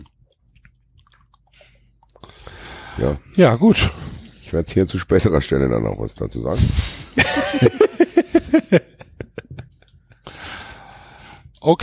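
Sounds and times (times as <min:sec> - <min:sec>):
chewing of a French hard cheese: 0:00.0 - 0:03.5, 0:09.4 - 0:11.8
speech: 0:03.0 - 0:07.9, 0:11.7 - 0:11.8
laughter: 0:07.2 - 0:10.2.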